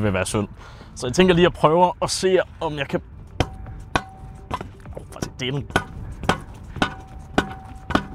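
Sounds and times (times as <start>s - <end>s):
speech: 0.0s - 3.1s, 5.4s - 5.9s
hammer blows driving something into the ground: 3.3s - 8.1s.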